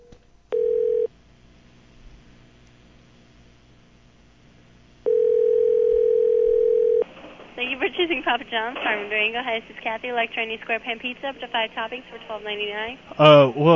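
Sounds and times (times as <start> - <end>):
telephone line tone at the start of a call to a pizza restaurant: 0.5 - 1.1, 5.0 - 7.0
speech: 7.7 - 13.7.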